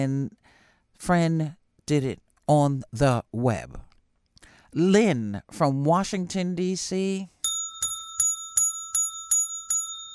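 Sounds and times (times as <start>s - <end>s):
speech: 0.0s - 3.9s, 4.7s - 7.9s
small bell ringing: 7.4s - 10.1s.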